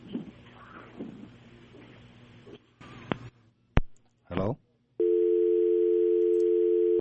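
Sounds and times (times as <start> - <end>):
steady mid-pitched telephone tone of an outgoing call: 5.0 - 6.9.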